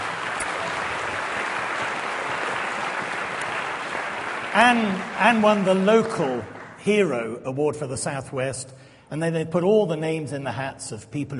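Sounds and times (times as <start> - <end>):
audience applause at a candlelit carol evening: 0.0 - 7.1
speech: 4.6 - 11.3.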